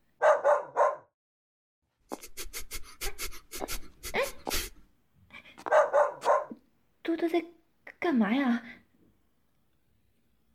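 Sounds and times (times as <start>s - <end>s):
dog barking: 0.2s - 1.1s, 5.6s - 6.6s
speech: 7.2s - 8.7s.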